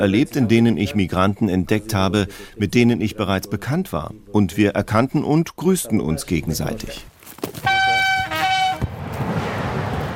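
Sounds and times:
speech: 0.0s - 7.7s
train horn blasts: 7.6s - 8.9s
train rushing past beside the tracks: 7.9s - 10.1s.

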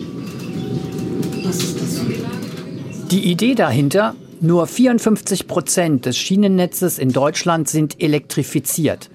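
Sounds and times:
hydrogen-powered passenger train running: 0.0s - 5.1s
speech: 3.1s - 9.1s.

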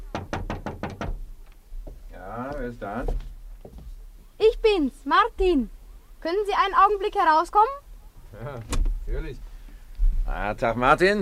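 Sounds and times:
knocking on a railway carriage door: 0.0s - 1.3s
speech: 2.7s - 3.8s, 4.4s - 9.5s, 10.3s - 11.2s.

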